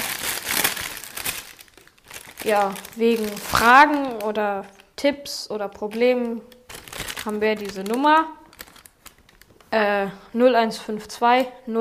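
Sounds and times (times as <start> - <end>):
bag crinkling: 0.0 - 4.8, 5.9 - 9.8
speech: 2.4 - 6.6, 7.2 - 8.4, 9.7 - 11.7.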